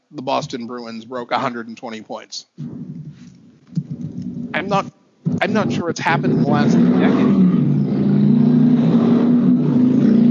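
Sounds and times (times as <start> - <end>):
speech: 0.1 - 3.0, 4.5 - 7.6
car engine revving: 2.6 - 10.2.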